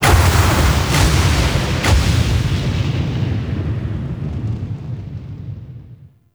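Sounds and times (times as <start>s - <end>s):
angry weather ambience: 0.0s - 6.0s.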